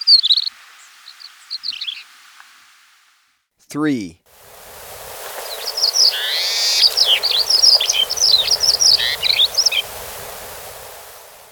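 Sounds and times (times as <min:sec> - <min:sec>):
speech: 0:03.7 - 0:04.2
Paramo Pipit singing in Ecuador: 0:04.4 - 0:11.4.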